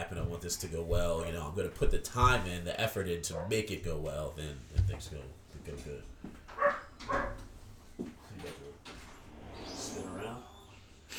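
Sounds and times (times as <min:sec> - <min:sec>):
shuffling noises: 0:00.0 - 0:02.7, 0:03.9 - 0:09.0
voices: 0:00.0 - 0:06.1, 0:09.5 - 0:11.1
speech: 0:00.4 - 0:06.8
dog barking: 0:03.3 - 0:03.7, 0:06.5 - 0:07.5
dog yipping: 0:06.5 - 0:07.5.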